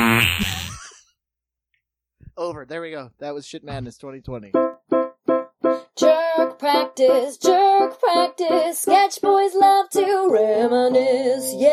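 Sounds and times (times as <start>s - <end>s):
loud buzzy fart: 0.0s - 1.0s
speech: 2.4s - 4.8s, 6.6s - 11.7s.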